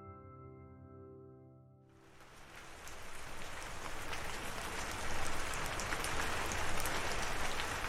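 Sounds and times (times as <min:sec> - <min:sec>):
steady moderate rain: 0:01.9 - 0:07.8.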